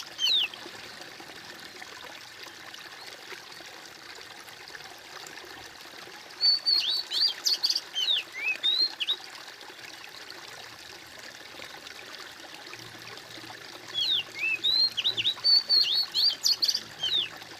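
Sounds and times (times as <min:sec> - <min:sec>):
bird singing high twisting whistled chirps: 0:00.2 - 0:00.5, 0:06.4 - 0:09.2, 0:13.9 - 0:17.3.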